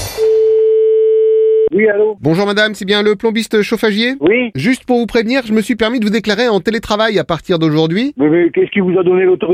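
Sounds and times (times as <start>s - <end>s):
telephone ringing tone of an outgoing call to a plumbing and heating business: 0.2s - 1.7s
speech: 1.8s - 9.5s.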